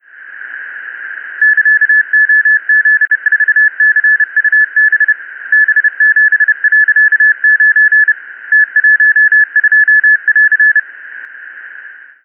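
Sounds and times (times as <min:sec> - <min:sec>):
CW morse code tones: 0:01.4 - 0:10.8.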